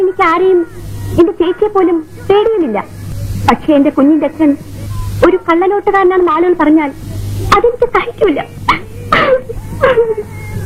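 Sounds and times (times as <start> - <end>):
faint low hum: 0.0 - 10.6
speech: 0.2 - 10.4
woman crying and sobbing: 7.2 - 10.6.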